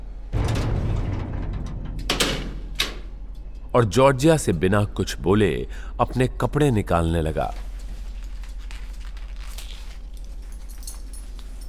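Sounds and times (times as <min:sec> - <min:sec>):
heavy train compartment door rumbling and rattling as it slides: 0:00.0 - 0:03.4
speech: 0:03.7 - 0:07.6.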